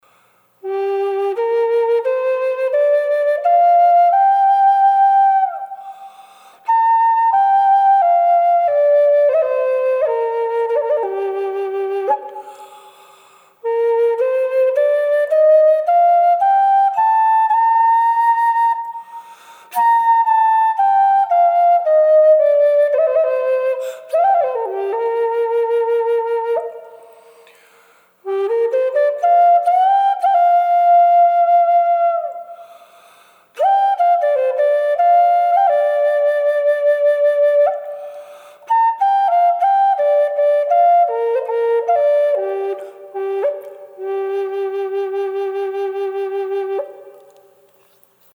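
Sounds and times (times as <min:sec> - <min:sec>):
wet Red Mallee Burl native American flute with reverb: 0:00.6 - 0:27.6, 0:28.2 - 0:47.5.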